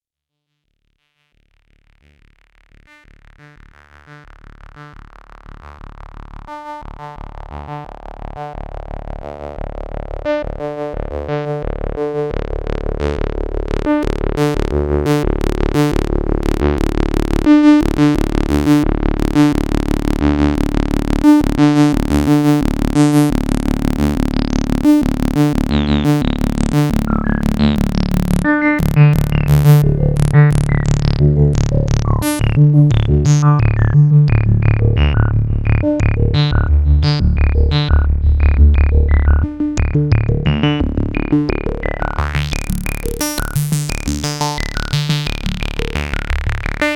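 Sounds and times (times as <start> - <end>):
bandpass filtered sequence: 4.3 - 46.9.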